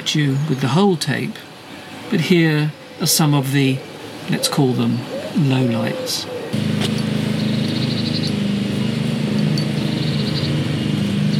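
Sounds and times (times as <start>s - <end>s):
speech: 0.0s - 1.5s, 2.1s - 7.1s
lawn mower engine droning: 6.5s - 11.3s.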